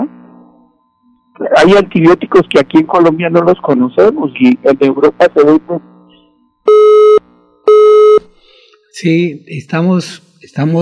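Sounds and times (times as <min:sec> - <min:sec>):
speech: 0:01.4 - 0:05.9, 0:09.0 - 0:10.8
telephone busy tone beeps after a dropped call: 0:06.7 - 0:08.2.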